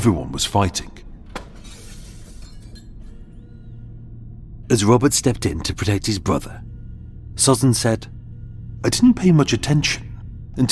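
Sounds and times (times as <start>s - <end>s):
speech: 0.0s - 1.0s, 4.7s - 6.7s, 7.4s - 8.2s, 8.8s - 10.7s
glass shattering into tinkling shards: 1.6s - 2.9s
low steady rumble: 2.2s - 10.7s.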